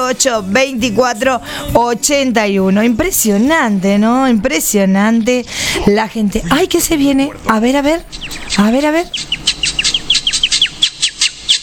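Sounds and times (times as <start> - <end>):
low hum: 0.0 - 11.6
speech: 0.1 - 9.8
birds chirping: 5.2 - 11.6.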